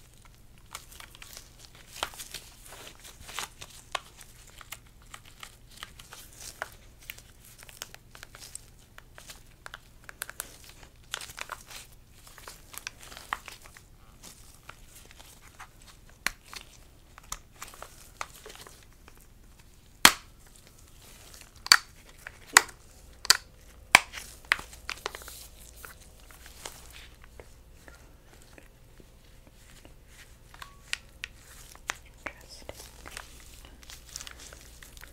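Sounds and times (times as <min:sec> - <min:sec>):
gloved hands handling objects, crinkling and rubbing: 0:00.0 - 0:35.1
sharp clicks and snaps: 0:21.6 - 0:21.9.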